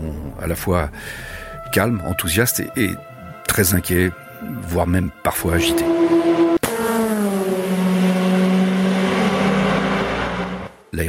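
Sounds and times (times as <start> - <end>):
speech: 0.4 - 6.3
race car engine at 400 km/h with high turbo boost speeding past: 5.6 - 10.8.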